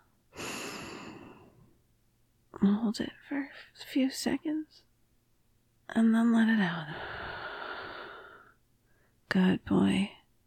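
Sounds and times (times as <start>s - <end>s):
deep breath in: 0.3s - 1.7s, 6.9s - 9.2s
speech: 2.6s - 4.9s, 5.9s - 7.2s, 9.3s - 10.2s.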